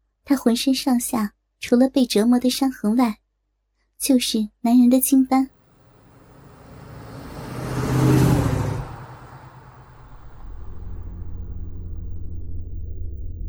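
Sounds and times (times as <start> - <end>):
speech: 0.3 - 3.2, 4.0 - 5.6
car engine driving at night: 5.6 - 13.4.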